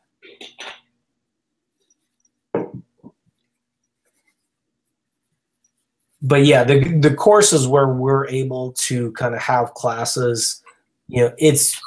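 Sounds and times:
pen strokes handwriting notes: 4.0 - 6.3
speech: 6.2 - 11.8.

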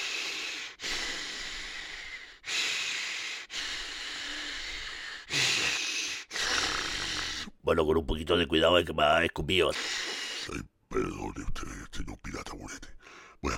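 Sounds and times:
man breathing deeply to calm down: 0.0 - 7.5, 9.7 - 10.5, 13.0 - 13.4
speech: 7.7 - 13.5.

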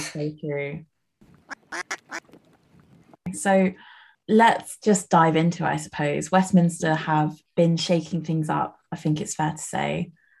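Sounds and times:
speech: 0.0 - 0.9, 3.3 - 10.2
duck quacking with raspy nasal calls: 1.5 - 2.2.

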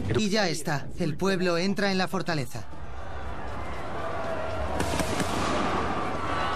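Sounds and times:
speech: 0.2 - 2.7
constant roar of an agitated crowd: 2.9 - 6.5
indistinct shouting and voices: 2.9 - 6.5
sharp gunshots: 4.7 - 6.1.

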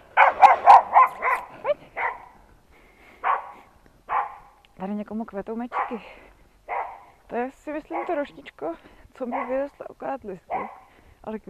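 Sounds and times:
small dog barking: 0.2 - 2.4, 3.2 - 4.6, 5.7 - 6.0, 6.7 - 7.1, 7.9 - 8.2, 9.3 - 9.6, 10.5 - 10.9
speech: 4.8 - 6.3, 7.3 - 11.4.

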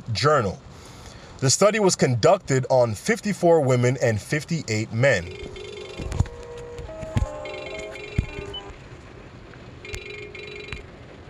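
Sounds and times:
speech: 0.1 - 0.7, 1.4 - 5.6
mobile phone ringing with a repeating electronic melody: 5.0 - 8.8, 9.8 - 10.9.

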